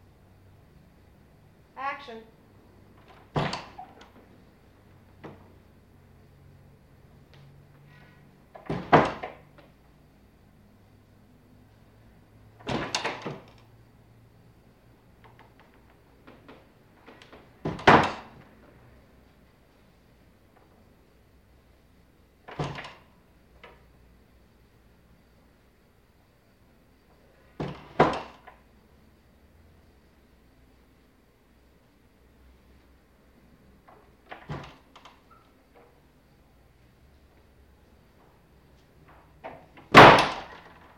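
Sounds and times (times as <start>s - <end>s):
speech: 2.0s - 2.4s
interior apartment doors opening and closing: 2.8s - 5.6s, 7.3s - 9.8s, 12.5s - 13.8s, 15.2s - 18.8s, 22.4s - 23.9s, 27.1s - 28.7s, 33.8s - 36.1s, 38.2s - 40.9s.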